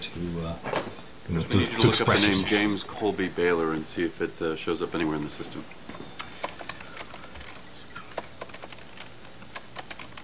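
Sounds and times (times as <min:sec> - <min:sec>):
low hum: 0:00.0 - 0:10.2
speech: 0:01.3 - 0:06.0
typing on a computer keyboard: 0:06.0 - 0:10.2.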